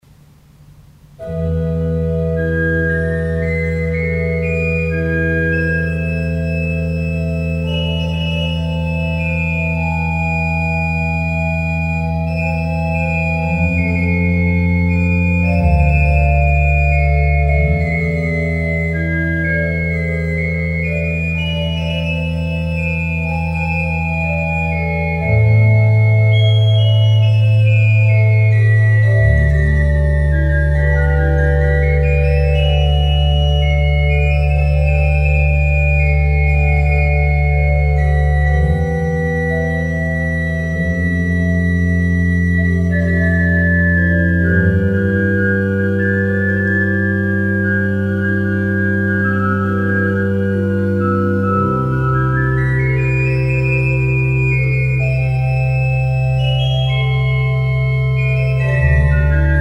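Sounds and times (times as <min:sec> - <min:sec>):
organ piece with tierce en bas dessus registration: 0:00.0 - 0:59.6.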